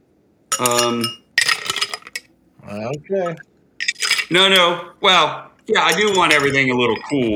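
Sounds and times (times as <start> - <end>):
small ice cubes clinking into a tall Collins glass for a cocktail: 0.5 - 2.2
speech: 0.6 - 1.2, 2.6 - 3.5, 4.3 - 7.3.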